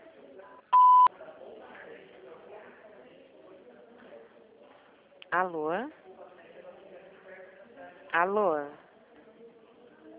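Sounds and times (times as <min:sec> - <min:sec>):
telephone beep tone after recorded queue message: 0:00.7 - 0:01.1
speech: 0:05.3 - 0:06.0, 0:08.1 - 0:08.8.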